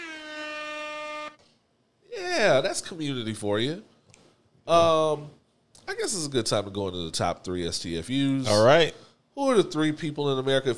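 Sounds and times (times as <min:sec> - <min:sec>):
air horn blast: 0:00.0 - 0:01.4
speech: 0:02.4 - 0:03.9, 0:04.7 - 0:10.7.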